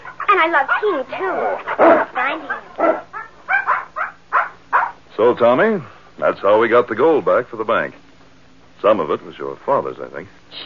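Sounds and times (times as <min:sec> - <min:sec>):
speech: 0:00.3 - 0:03.0, 0:05.2 - 0:08.0, 0:08.8 - 0:10.6
puppy yipping and whimpering: 0:02.5 - 0:05.0.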